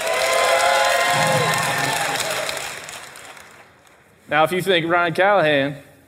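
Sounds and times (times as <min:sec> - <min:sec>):
live crowd cheering: 0:00.0 - 0:04.0
speech: 0:04.3 - 0:05.9.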